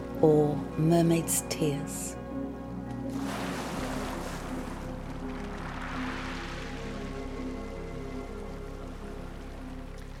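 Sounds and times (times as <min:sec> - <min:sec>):
speech: 0:00.2 - 0:02.2
continuous rushing surf on open water: 0:03.1 - 0:07.5.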